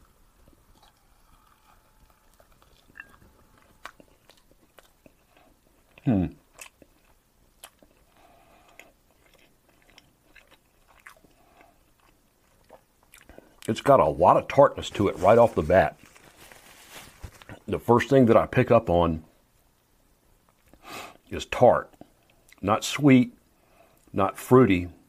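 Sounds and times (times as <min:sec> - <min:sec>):
chewing of food: 0:00.0 - 0:13.8
speech: 0:06.0 - 0:06.4, 0:13.7 - 0:16.1, 0:17.8 - 0:19.3, 0:21.3 - 0:21.9, 0:22.6 - 0:23.4, 0:24.2 - 0:25.0.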